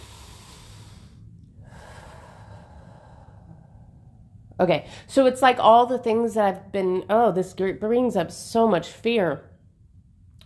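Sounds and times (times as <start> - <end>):
deep breath: 0.0 - 5.1
speech: 4.6 - 9.5.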